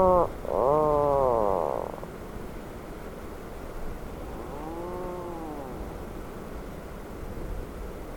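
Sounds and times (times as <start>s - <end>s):
Atlantic puffin groaning call: 0.0s - 2.1s, 4.1s - 6.1s
rumbling background: 0.0s - 2.4s, 3.8s - 6.6s.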